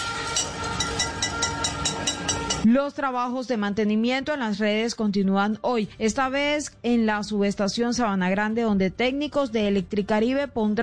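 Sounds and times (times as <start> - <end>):
car horns honking outdoors: 0.0 - 2.7
pots banged by a crowd of residents protesting at night in Barranquilla: 0.0 - 2.7
speech: 2.6 - 10.8.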